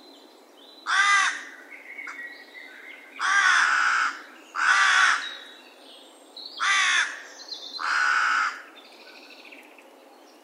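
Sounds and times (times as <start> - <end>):
carrion crow Corvus corone cawing: 0.9 - 1.6, 3.2 - 5.3, 6.6 - 7.2, 7.8 - 8.7.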